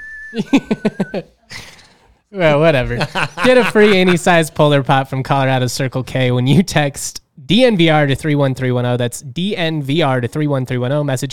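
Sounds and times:
voice imitating a four-note whistled signal tune with sung syllables: 0:00.0 - 0:01.9
speech: 0:00.3 - 0:01.7, 0:02.3 - 0:11.3
laughter: 0:00.4 - 0:01.4, 0:02.8 - 0:04.4.

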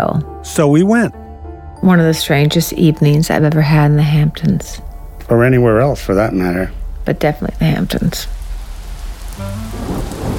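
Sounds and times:
speech: 0:00.0 - 0:01.2, 0:01.8 - 0:08.4
thunder rumbling: 0:01.6 - 0:10.3
heavy rain: 0:04.8 - 0:10.3.

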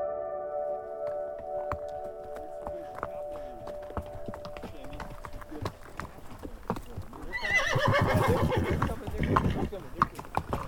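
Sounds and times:
horse hoof clicks on a ride through wilderness: 0:01.0 - 0:10.6
horse whinnying: 0:07.3 - 0:09.7.

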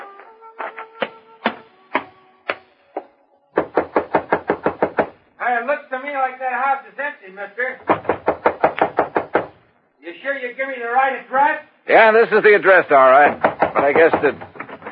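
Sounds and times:
knocking on a wooden door: 0:03.6 - 0:05.2, 0:07.8 - 0:09.6, 0:13.3 - 0:14.9
speech: 0:05.5 - 0:08.0, 0:10.0 - 0:14.6.

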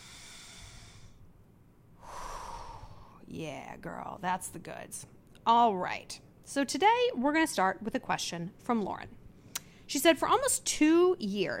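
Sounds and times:
deep breathing during a guided breathing exercise: 0:00.0 - 0:01.3, 0:02.0 - 0:03.2
speech: 0:03.3 - 0:09.2, 0:09.9 - 0:11.5.

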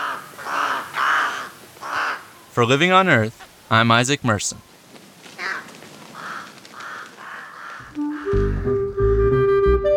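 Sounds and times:
raven croaking: 0:00.0 - 0:02.5, 0:05.4 - 0:09.0
speech: 0:02.6 - 0:04.7.

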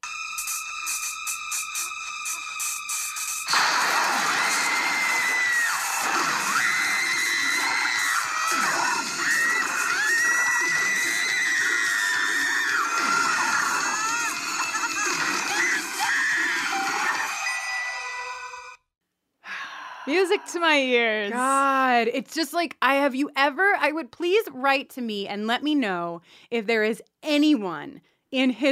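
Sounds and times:
woman's drawn-out horror-film scream: 0:03.7 - 0:18.1
speech: 0:20.5 - 0:28.7.

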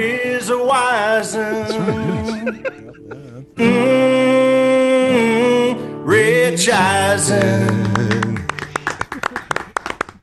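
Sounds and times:
speech: 0:00.0 - 0:08.4
laughter: 0:01.3 - 0:03.7, 0:08.6 - 0:10.0
brief voiced hum: 0:01.3 - 0:04.2
soft polite golf clap: 0:07.3 - 0:10.2.

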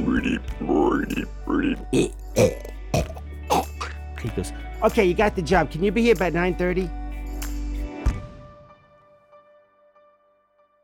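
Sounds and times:
Foley artist vocally imitating a frog throwing up a ring: 0:00.0 - 0:04.0
speech: 0:00.1 - 0:03.1, 0:04.2 - 0:07.0.

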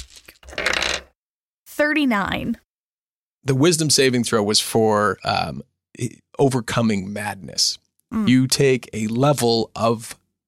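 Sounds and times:
pair of percentile dice rattling across a hard surface: 0:00.0 - 0:01.1
speech: 0:01.8 - 0:02.6, 0:03.4 - 0:10.2.

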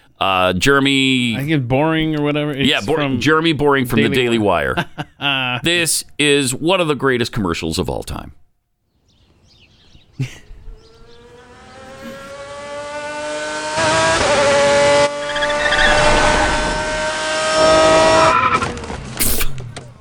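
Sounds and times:
speech: 0:00.2 - 0:08.4, 0:10.2 - 0:10.4
car engine revving hard in an advertisement: 0:10.7 - 0:19.2.

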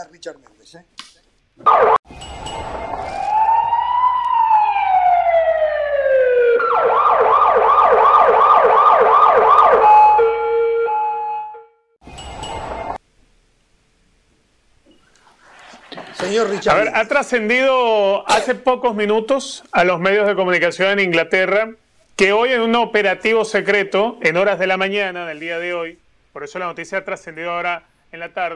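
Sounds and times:
speech: 0:00.0 - 0:03.0, 0:16.4 - 0:28.5
emergency siren sound effect: 0:01.6 - 0:11.8.

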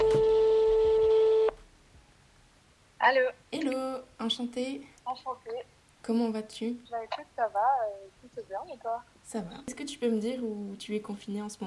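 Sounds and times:
ringback tone of an outgoing phone call: 0:00.0 - 0:01.6
quiet phone line hiss: 0:00.0 - 0:11.6
speech: 0:03.1 - 0:11.6.

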